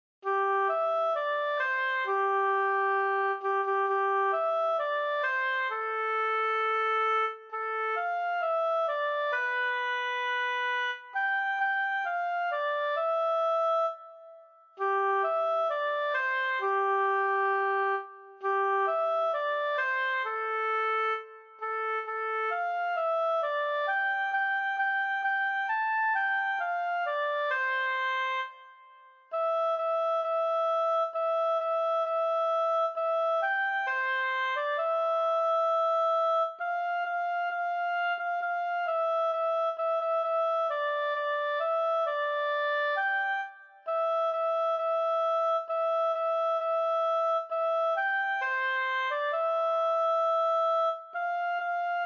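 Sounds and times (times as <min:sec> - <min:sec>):
solo oboe: 0:00.2 - 0:52.0.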